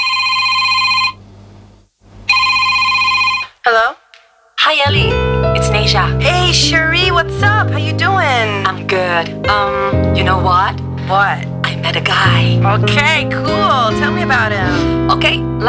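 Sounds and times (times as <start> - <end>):
telephone ringing: 0.0 - 1.2, 2.3 - 3.6
people talking over a busy background: 3.7 - 4.0, 4.6 - 15.6.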